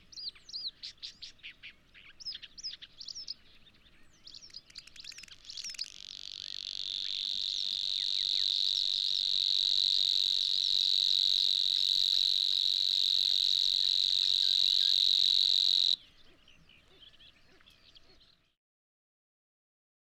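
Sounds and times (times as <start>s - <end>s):
grasshopper warbler reeling song: 0.0s - 18.6s.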